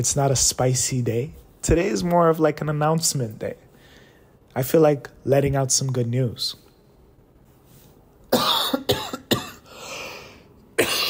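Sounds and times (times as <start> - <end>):
speech: 0.0 - 3.6, 4.5 - 6.6
harsh coughing fit: 8.3 - 10.0, 10.8 - 11.0.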